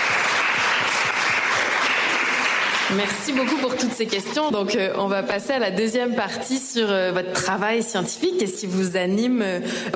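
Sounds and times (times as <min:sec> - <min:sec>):
audience applause at a science talk event: 0:00.0 - 0:04.5
speech: 0:02.9 - 0:09.9.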